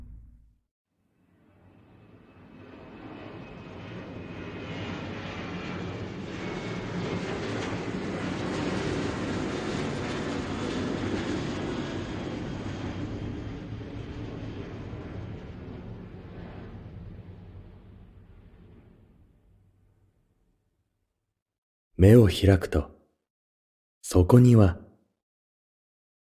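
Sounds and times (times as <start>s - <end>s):
airplane engines roaring as the plane prepares for takeoff: 1.5s - 18.8s
speech: 22.0s - 22.9s, 24.1s - 24.8s.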